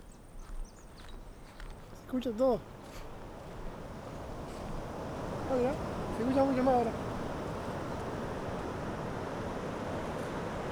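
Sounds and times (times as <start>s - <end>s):
speech: 2.1s - 2.8s, 5.5s - 7.1s
sea waves: 3.2s - 10.7s.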